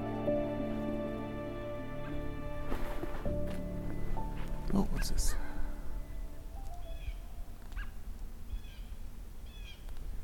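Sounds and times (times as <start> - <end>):
steady low outdoor rumble: 0.1 - 10.2
bald eagle calling while flying over: 3.9 - 9.9
speech: 4.8 - 5.4.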